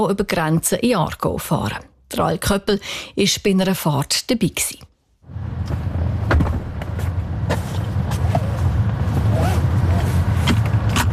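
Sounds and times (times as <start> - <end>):
speech: 0.0 - 5.9
self-driving robotaxi engine rumble: 5.2 - 11.1
car doors opening and closing: 5.6 - 11.1
passengers buckling seatbelts: 9.2 - 11.1.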